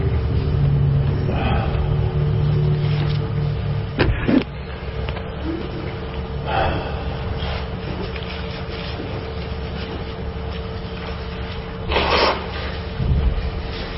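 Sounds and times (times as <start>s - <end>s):
steady low hum: 0.0s - 13.9s
person blowing their nose: 11.9s - 12.8s.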